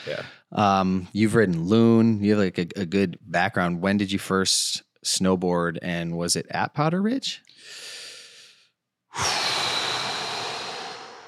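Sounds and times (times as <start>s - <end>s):
speech: 0.0s - 8.0s, 9.2s - 9.5s
breath blown into a microphone: 7.5s - 11.2s.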